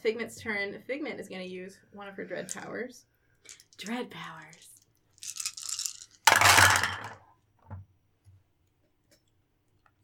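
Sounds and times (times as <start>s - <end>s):
speech: 0.0s - 5.4s
handful of dice rattling and clattering across a hard surface: 3.5s - 7.2s.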